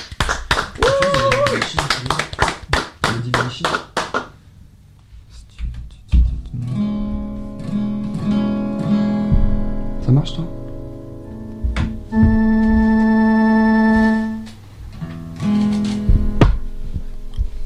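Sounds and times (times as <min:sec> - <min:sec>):
audience applause: 0:00.0 - 0:04.3
music: 0:06.4 - 0:17.6.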